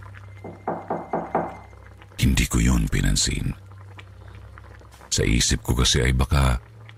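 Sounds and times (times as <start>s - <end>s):
low steady hum: 0.0s - 6.9s
knocking on a house door: 0.4s - 1.7s
speech: 2.2s - 3.7s, 5.2s - 6.7s.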